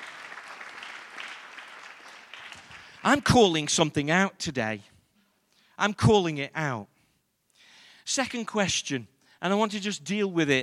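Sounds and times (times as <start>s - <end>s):
crowd applauding in praise: 0.0s - 3.5s
speech: 3.0s - 4.9s, 5.8s - 6.9s, 8.1s - 10.6s.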